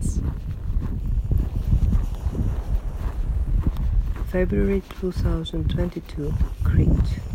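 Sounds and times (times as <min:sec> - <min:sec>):
outdoor wind buffeting microphone in low rumbling gusts: 0:00.0 - 0:07.3
speech: 0:04.4 - 0:07.3.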